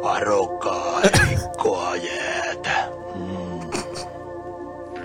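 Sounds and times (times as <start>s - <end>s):
speech: 0.1s - 1.2s
voice actor imitating a menacing bear growl: 0.9s - 4.1s.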